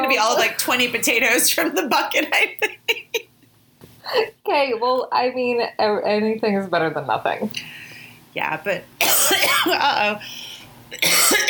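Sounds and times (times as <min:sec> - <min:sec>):
speech: 0:00.1 - 0:03.0, 0:04.1 - 0:07.8, 0:08.4 - 0:11.4
person coughing: 0:09.0 - 0:09.9, 0:11.0 - 0:11.4.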